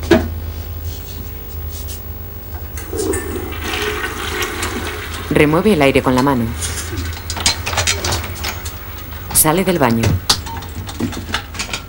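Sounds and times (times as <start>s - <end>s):
toilet flushing in a bathroom: 2.6s - 11.4s
speech: 5.3s - 7.1s, 9.4s - 10.3s, 11.0s - 11.4s.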